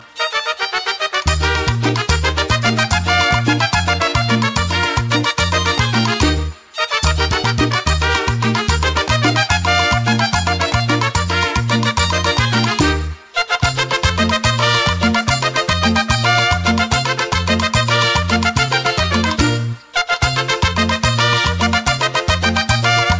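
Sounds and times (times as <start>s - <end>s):
Mexican music: 0.0s - 23.1s.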